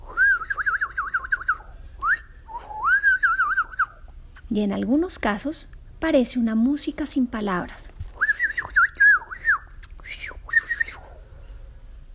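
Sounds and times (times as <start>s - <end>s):
warbling whistle imitating birdsong: 0.0s - 4.1s, 8.2s - 11.3s
speech: 4.5s - 7.9s.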